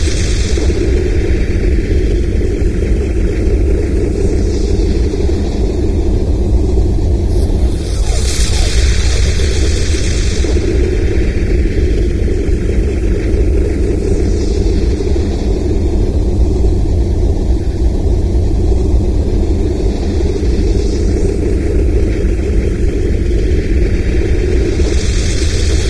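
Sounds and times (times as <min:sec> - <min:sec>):
ambient city loop: 0:00.0 - 0:25.8.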